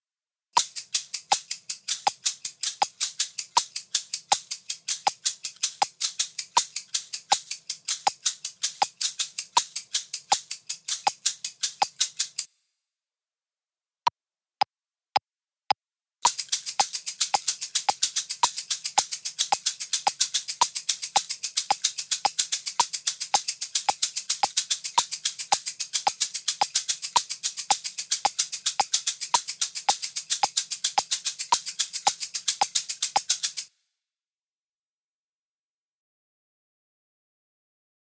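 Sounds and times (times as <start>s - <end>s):
two shakers: 0.6s - 12.5s, 16.3s - 33.8s.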